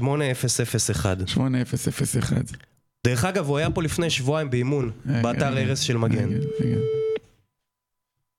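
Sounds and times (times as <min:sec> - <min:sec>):
speech: 0:00.0 - 0:07.0
telephone ringing of an outgoing call to a mobile phone: 0:06.3 - 0:07.2.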